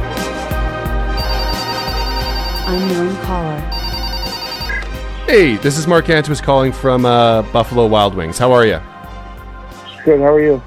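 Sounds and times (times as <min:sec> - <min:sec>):
mobile phone ringtone with melodic electronic tune and pulsing beat: 0:01.2 - 0:04.8
speech: 0:02.7 - 0:03.8, 0:05.3 - 0:08.9, 0:10.0 - 0:10.6.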